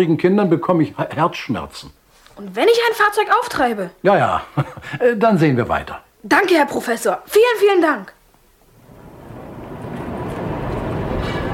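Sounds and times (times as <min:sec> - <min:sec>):
speech: 0:00.0 - 0:08.2
S-Bahn U-Bahn and tram trains rolling: 0:08.7 - 0:11.5.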